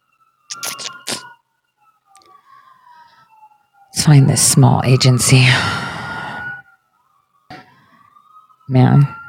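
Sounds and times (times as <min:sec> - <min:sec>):
police sirens wailing outside an apartment building: 0:00.0 - 0:09.2
speech: 0:04.0 - 0:05.9, 0:08.7 - 0:09.2.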